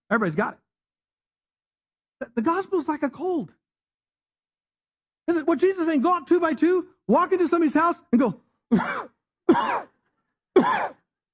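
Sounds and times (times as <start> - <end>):
speech: 0.1 - 0.6, 2.2 - 3.6, 5.3 - 9.9, 10.6 - 11.0
harsh human coughs: 8.7 - 10.0, 10.6 - 11.1.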